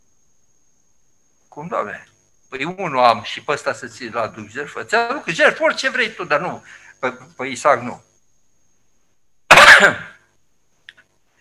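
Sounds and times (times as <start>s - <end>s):
speech: 1.6s - 8.1s, 9.8s - 10.1s
person coughing: 9.5s - 10.1s.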